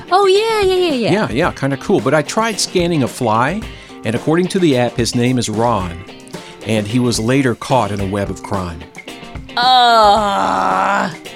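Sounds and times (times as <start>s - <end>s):
speech: 0.1s - 8.9s, 9.6s - 11.3s
person groaning in mock reaction to a pun: 9.6s - 11.2s.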